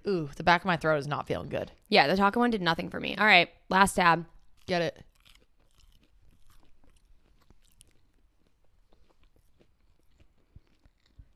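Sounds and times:
speech: 0.0s - 5.1s
chewing crunchy food into the microphone: 4.3s - 11.3s.

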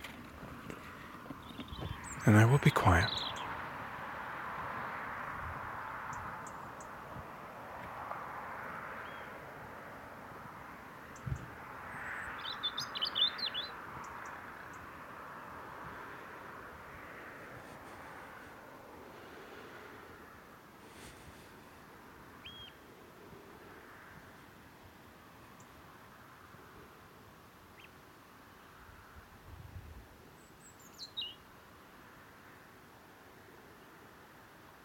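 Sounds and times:
outdoor rush of wind: 0.0s - 34.8s
robin singing: 0.8s - 3.7s, 11.1s - 14.8s, 22.4s - 22.8s, 30.4s - 31.4s
speech: 2.2s - 3.2s.

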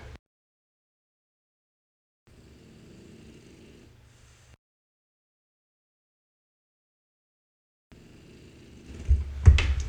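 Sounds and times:
sleeping animal snoring: 2.3s - 4.4s, 7.9s - 9.8s.

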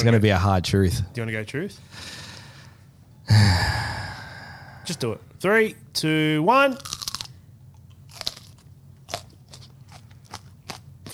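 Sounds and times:
speech: 0.0s - 2.3s, 3.3s - 3.7s, 4.9s - 7.0s
low hum: 0.0s - 11.1s
person biting and chewing a chili pepper: 6.8s - 11.1s.

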